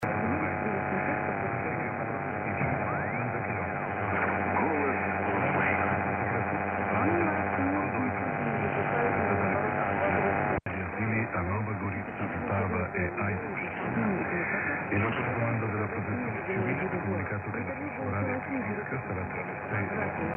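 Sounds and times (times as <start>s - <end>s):
medium wave radio at 1170 kHz: 0.0s - 20.3s.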